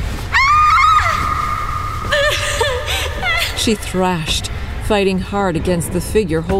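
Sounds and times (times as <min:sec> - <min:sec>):
woman screaming: 0:00.3 - 0:03.7
speech: 0:03.6 - 0:06.5.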